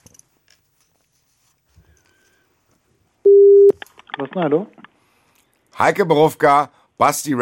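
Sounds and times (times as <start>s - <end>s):
telephone call tone before answer: 3.3s - 3.8s
speech: 4.4s - 4.8s, 5.8s - 7.4s.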